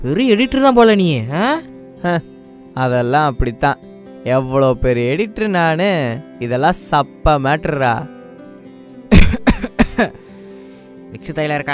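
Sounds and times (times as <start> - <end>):
speech: 0.0 - 8.2, 10.0 - 10.2, 11.1 - 11.7
person coughing harshly: 9.1 - 10.2.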